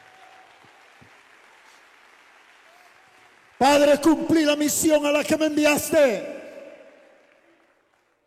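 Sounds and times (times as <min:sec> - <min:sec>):
audience applauding: 0:00.0 - 0:05.4, 0:06.8 - 0:08.2
speech: 0:03.6 - 0:06.4.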